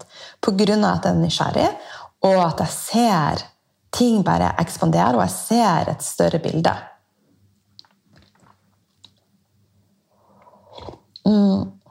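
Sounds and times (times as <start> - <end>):
speech: 0.4 - 6.9, 11.2 - 11.8
swallow-like vocal exhale: 10.3 - 11.1
wet slurp from a cup: 10.3 - 11.2.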